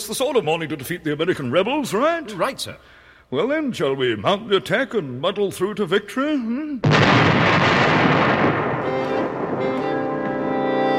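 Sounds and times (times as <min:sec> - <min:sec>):
speech: 0:00.1 - 0:08.0
rumbling booming gunfire: 0:06.8 - 0:10.4.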